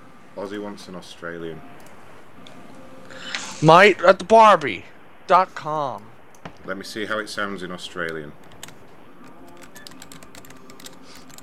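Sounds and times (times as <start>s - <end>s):
speech: 0.4s - 1.8s, 3.1s - 8.5s
rapid typing on a computer keyboard: 9.5s - 11.4s.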